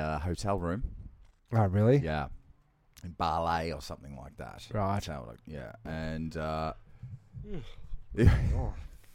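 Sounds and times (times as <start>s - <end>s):
speech: 0.0s - 2.4s, 3.0s - 8.9s
person yawning: 7.4s - 7.9s.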